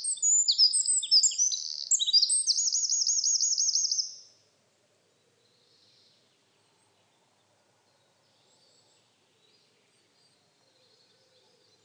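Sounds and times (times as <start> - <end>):
Eurasian wren Troglodytes troglodytes singing: 0.0 - 4.3.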